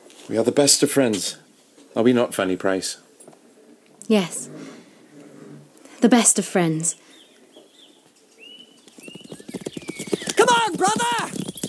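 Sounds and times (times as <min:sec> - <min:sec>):
speech: 0:00.3 - 0:01.4, 0:02.0 - 0:03.0, 0:04.1 - 0:04.6, 0:06.0 - 0:07.0
horse hooves clip-clopping as a rider gallops: 0:07.6 - 0:11.6
faint high whistling tones: 0:08.4 - 0:11.6.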